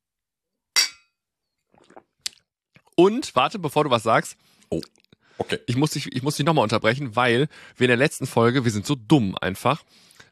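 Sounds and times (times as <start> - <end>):
glasses clinking in a toast: 0.8 - 1.1
speech: 3.0 - 10.1.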